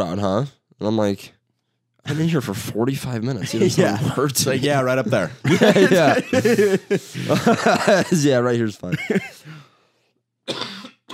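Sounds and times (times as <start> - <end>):
speech: 0.0 - 1.4, 2.0 - 9.7, 10.5 - 10.8
laughter: 3.4 - 9.4
man coughing: 5.6 - 8.2, 10.5 - 11.1.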